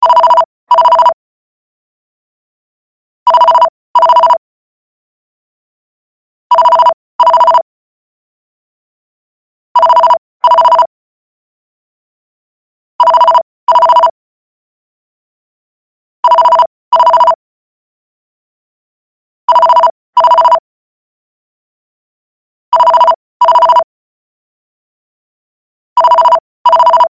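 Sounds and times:
landline phone ringing: 0:00.0 - 0:01.2, 0:03.3 - 0:04.4, 0:06.5 - 0:07.6, 0:09.8 - 0:10.9, 0:13.0 - 0:14.2, 0:16.2 - 0:17.4, 0:19.5 - 0:20.6, 0:22.7 - 0:23.9, 0:26.0 - 0:27.1.

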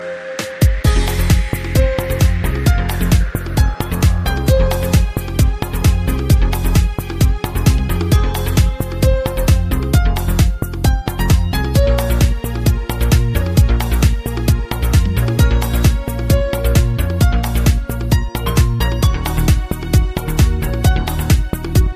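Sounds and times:
piano music: 0:00.0 - 0:21.9.

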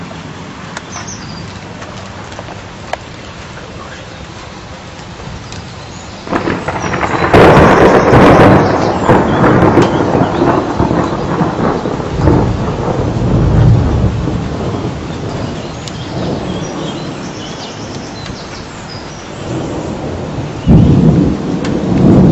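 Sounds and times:
bird song: 0:00.8 - 0:01.6, 0:05.4 - 0:12.0, 0:14.6 - 0:21.1
thunder: 0:06.2 - 0:17.9, 0:19.4 - 0:22.3.

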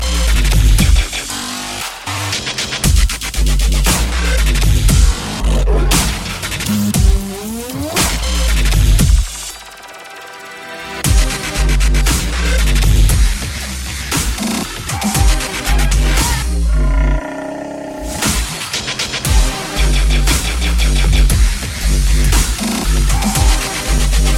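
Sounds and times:
dubstep beat: 0:00.0 - 0:24.3.

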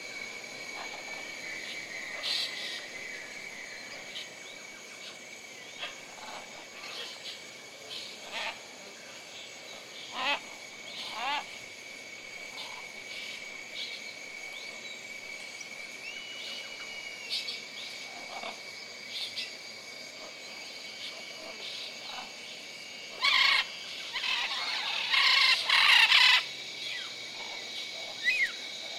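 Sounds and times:
jungle ambience: 0:00.0 - 0:28.9.

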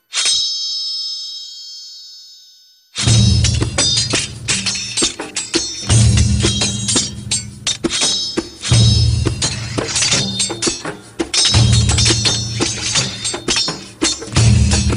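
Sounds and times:
sword dance music: 0:03.0 - 0:14.9.

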